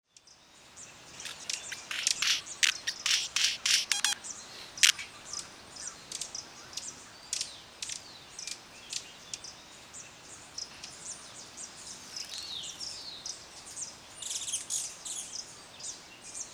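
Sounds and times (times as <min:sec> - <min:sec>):
faint background hiss: 0:00.1 - 0:16.5
Talamanca hummingbird Eugenes spectabilis giving sharp high dry chips: 0:01.1 - 0:07.5.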